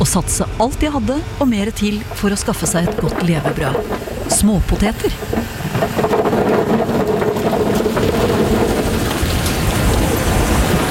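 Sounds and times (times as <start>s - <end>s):
speech: 0.0s - 7.6s
tractor engine running in a potato field: 0.0s - 10.9s
rough clattering mechanical noise of tractor: 1.8s - 9.7s.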